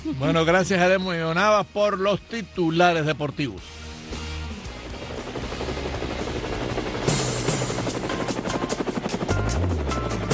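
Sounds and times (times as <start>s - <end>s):
speech: 0.0s - 3.8s
helicopter engine whine: 3.6s - 10.3s
helicopter rotor thumping: 4.8s - 10.3s.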